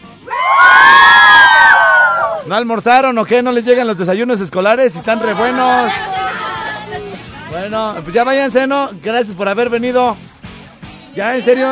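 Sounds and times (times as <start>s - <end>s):
group of children shouting: 0.2s - 2.5s, 5.1s - 7.2s
speech: 2.5s - 6.4s, 7.5s - 10.3s, 11.2s - 11.7s.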